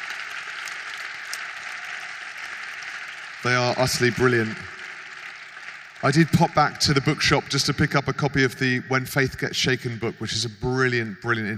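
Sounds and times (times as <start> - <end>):
audience applauding in a very hot tent: 0.0 - 8.8
speech: 3.4 - 4.8, 6.0 - 11.5.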